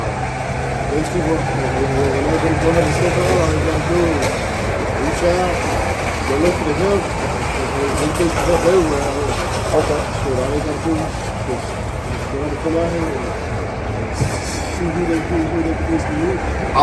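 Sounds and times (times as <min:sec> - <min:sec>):
car driving by outdoors with engine and road rumble: 0:00.0 - 0:16.8
people talking indistinctly: 0:00.8 - 0:16.8
speech: 0:01.0 - 0:13.5, 0:14.1 - 0:16.8.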